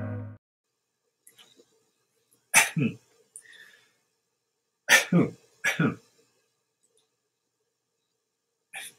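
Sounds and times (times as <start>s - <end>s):
explosive coughs or sneezes: 2.5s - 3.1s, 4.9s - 6.1s
faint small clicks: 6.8s - 7.1s.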